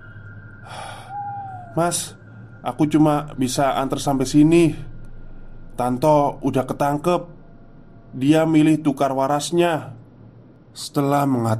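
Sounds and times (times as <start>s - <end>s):
low steady hum: 0.0s - 11.5s
sharp breathy gasp of someone catching their breath: 0.6s - 1.6s
speech: 1.8s - 4.9s, 5.8s - 7.4s, 8.1s - 10.0s, 10.8s - 11.5s.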